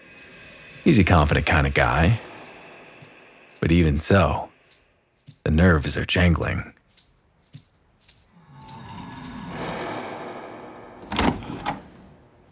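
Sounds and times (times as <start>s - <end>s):
speech: 0.8s - 2.3s, 3.6s - 4.5s, 5.5s - 6.7s
door handle clicks: 11.0s - 12.1s.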